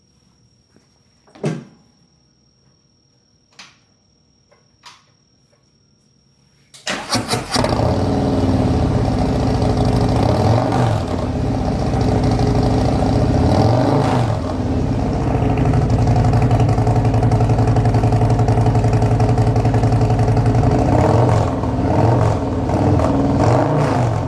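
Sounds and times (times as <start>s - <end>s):
motorcycle with exhaust tabs starting, revving and idling: 6.9s - 24.2s.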